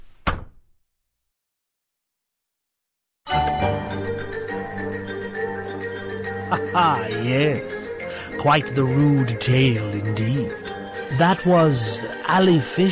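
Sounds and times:
bar door gently closing: 0:00.0 - 0:00.7
speech: 0:06.5 - 0:07.8, 0:08.4 - 0:12.8.

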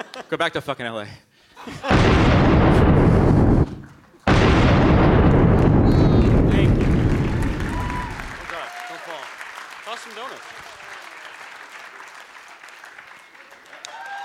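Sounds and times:
speech: 0:00.2 - 0:02.7
double cannon blasts: 0:01.9 - 0:08.4.

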